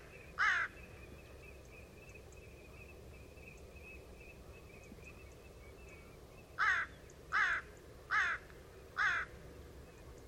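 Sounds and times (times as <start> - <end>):
background hiss: 0.0 - 10.2
bird harsh caw: 0.4 - 0.8, 6.6 - 9.3.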